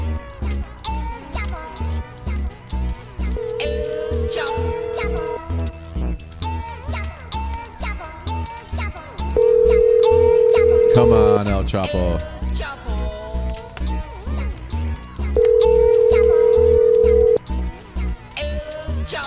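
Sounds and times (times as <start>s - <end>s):
busy rhythmic music: 0.0s - 19.2s
telephone dialing and ringing tones: 3.4s - 5.4s, 9.4s - 11.4s, 15.4s - 17.4s
speech: 11.2s - 12.7s.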